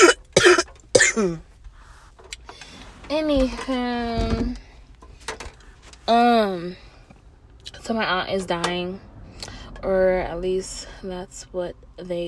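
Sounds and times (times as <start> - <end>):
person coughing: 0.0 - 1.4
speech: 3.1 - 4.6, 6.1 - 6.9, 7.9 - 9.1, 9.8 - 12.2.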